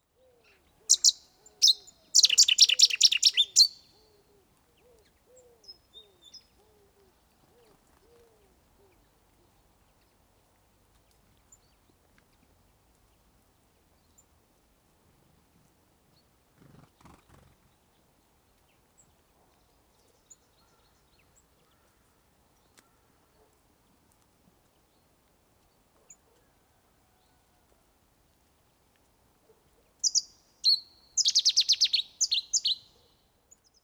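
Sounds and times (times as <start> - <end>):
Cetti's warbler Cettia cetti singing: 0.2 - 6.8, 30.0 - 33.8.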